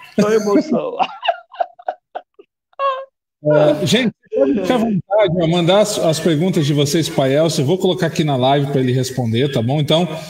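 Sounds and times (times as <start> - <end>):
laughter: 0.0 - 3.0
person sobbing with emotion: 0.0 - 5.1
speech: 0.2 - 1.2, 3.4 - 10.2.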